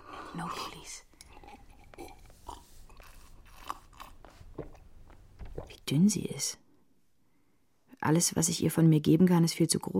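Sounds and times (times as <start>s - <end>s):
speech: 0.3s - 1.1s, 5.9s - 6.6s, 8.0s - 9.9s
bread and biscuits being eaten, crunching and chewing: 1.2s - 5.7s.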